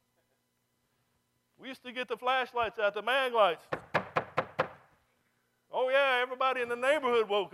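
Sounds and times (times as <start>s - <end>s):
speech: 1.6s - 3.8s, 5.8s - 7.5s
knocking on a door: 3.7s - 4.9s.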